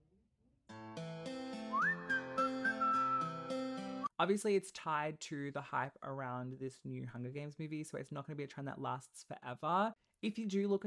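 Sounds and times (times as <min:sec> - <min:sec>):
pop track with steady chords and bright whistled melody: 0:01.6 - 0:04.1
speech: 0:04.2 - 0:10.8.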